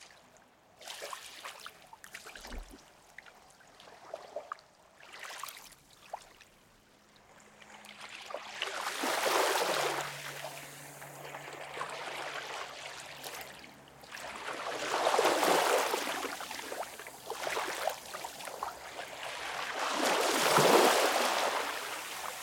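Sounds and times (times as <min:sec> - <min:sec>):
low engine-like hum: 0:06.8 - 0:17.3
ocean water washing up on sand: 0:08.6 - 0:22.4.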